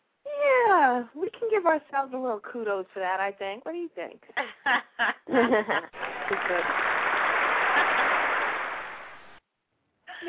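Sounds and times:
speech: 1.0 - 7.0
laughter: 4.4 - 8.9
group applauding itself with clapping and cheering: 5.8 - 9.4.

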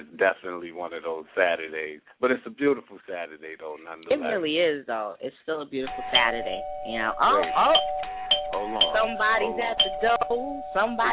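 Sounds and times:
speech: 0.2 - 11.1
electronic doorbell ringing: 6.1 - 11.1.

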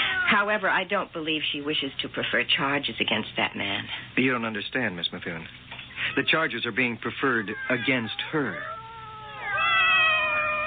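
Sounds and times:
cat meowing plaintively: 0.0 - 0.6, 6.0 - 10.6
speech: 0.4 - 8.8.

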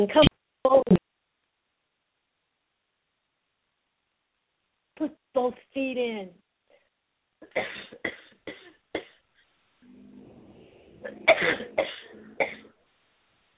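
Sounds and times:
speech: 0.0 - 0.3, 5.5 - 6.4
person coughing: 7.4 - 9.2, 10.8 - 12.7
low rasping breath: 9.8 - 12.7.

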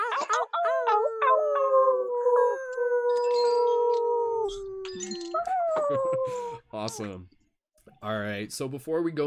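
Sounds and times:
people on an online call imitating wolf howls: 0.0 - 7.2
speech: 5.9 - 7.4, 8.0 - 9.2.

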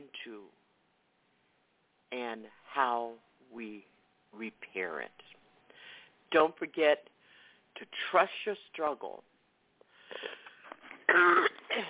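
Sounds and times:
speech: 2.1 - 5.4, 6.3 - 7.1, 7.8 - 9.3, 11.1 - 11.8
raspy wheezy breathing: 9.9 - 10.7
person coughing: 11.1 - 11.8.

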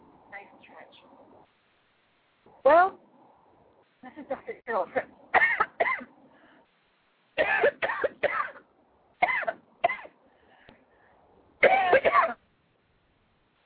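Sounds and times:
speech: 2.5 - 3.0, 4.0 - 5.4
loud harsh coughing: 5.3 - 6.1, 7.4 - 10.2, 11.6 - 12.4.

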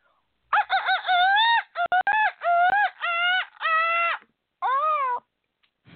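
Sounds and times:
person imitating a seagull call: 0.8 - 5.3.

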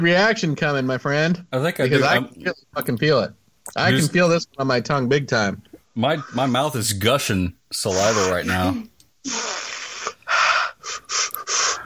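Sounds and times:
speech: 0.0 - 9.6
sharp hissing breaths through the mouth after eating spicy food: 9.3 - 11.8.

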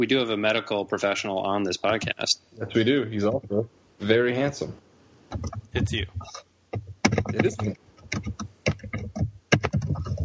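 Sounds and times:
speech: 0.0 - 8.4
typing on a junky laptop keyboard: 6.7 - 10.2.

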